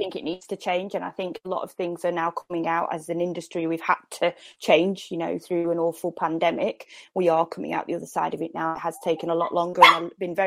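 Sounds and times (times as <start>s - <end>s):
speech: 0.0s - 10.4s
dog barking: 9.8s - 10.1s.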